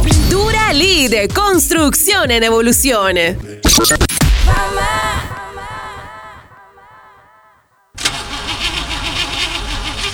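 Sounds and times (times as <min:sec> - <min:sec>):
speech: 0:00.8 - 0:05.1
car engine cranking unevenly and sputtering: 0:08.0 - 0:10.1.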